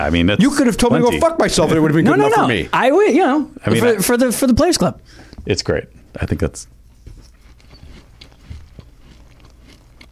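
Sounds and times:
speech: 0:00.0 - 0:06.8
crunchy chewing of instant coffee crystals: 0:05.0 - 0:10.1.

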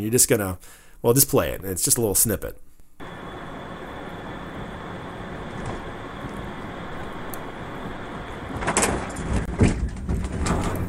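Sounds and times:
speech: 0:00.0 - 0:02.7
road and engine rumble of a car: 0:03.0 - 0:10.8.

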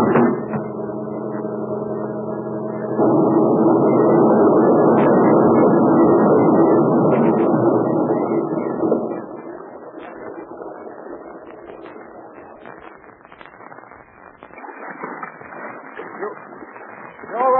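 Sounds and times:
truck engine droning: 0:00.0 - 0:13.1.

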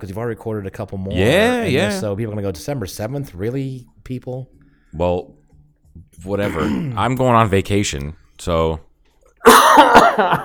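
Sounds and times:
speech: 0:00.0 - 0:05.4, 0:06.0 - 0:10.4
harsh rough cough into the microphone: 0:06.4 - 0:07.1, 0:09.4 - 0:10.4.

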